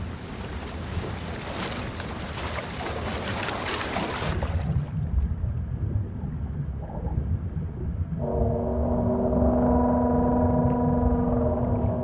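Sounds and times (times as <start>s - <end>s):
submarine ballast tanks flooding: 0.0s - 5.0s
deep underwater rumble: 4.4s - 12.0s
submarine engines running: 4.8s - 12.0s.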